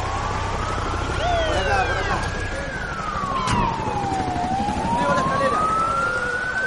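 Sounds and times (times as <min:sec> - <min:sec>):
fire engine siren wailing as it arrives: 0:00.0 - 0:06.6.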